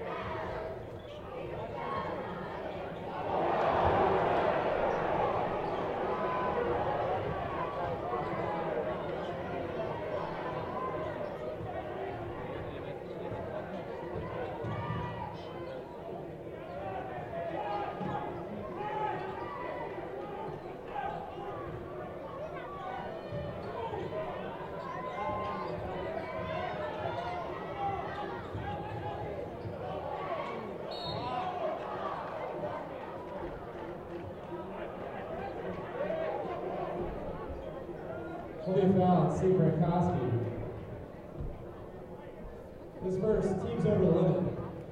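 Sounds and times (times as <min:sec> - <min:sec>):
basketball game crowd voices and chatter in the stands: 0:00.0 - 0:44.9
basketball crowd cheering: 0:01.5 - 0:12.7, 0:16.8 - 0:39.0.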